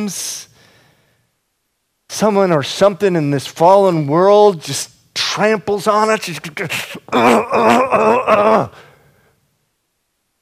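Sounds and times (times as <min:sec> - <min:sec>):
speech: 0:00.0 - 0:00.5, 0:02.1 - 0:08.8
person groaning: 0:07.0 - 0:08.9.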